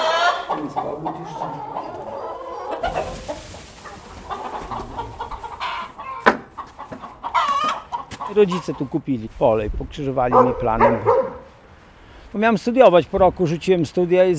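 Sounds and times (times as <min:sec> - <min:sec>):
several hens clucking in a coop: 0:00.0 - 0:09.4
rustling background: 0:02.8 - 0:05.9
speech: 0:08.4 - 0:11.4, 0:12.3 - 0:14.3.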